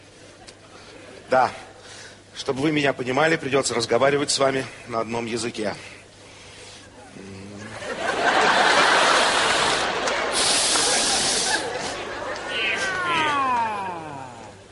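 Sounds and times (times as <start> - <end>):
speech: 1.3 - 1.6, 2.4 - 6.0
laughter: 7.5 - 14.2
several voices mimicking cats meowing: 12.5 - 14.6.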